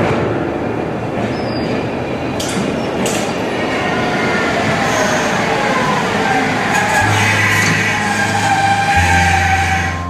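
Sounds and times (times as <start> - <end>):
train rumbling on single-track rails: 0.0 - 10.0
high train squeaks: 4.9 - 10.0.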